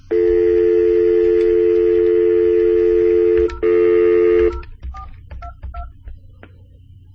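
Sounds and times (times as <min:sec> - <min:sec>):
phone dial tone: 0:00.0 - 0:04.6
phone keypad beeps dialing a number: 0:00.1 - 0:06.0.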